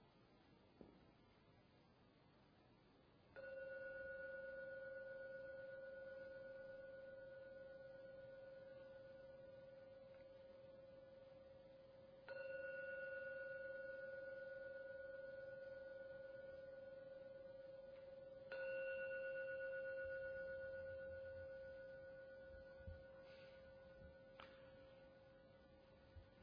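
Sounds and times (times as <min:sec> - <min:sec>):
meditation gong struck and ringing in a quiet room: 0:03.4 - 0:26.3.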